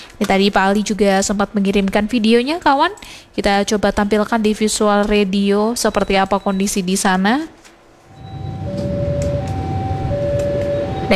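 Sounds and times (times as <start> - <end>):
speech: 0.2 - 7.6
busy road traffic: 8.0 - 11.1
sustained tonal whine: 8.1 - 11.1
train rumbling past: 8.1 - 11.1.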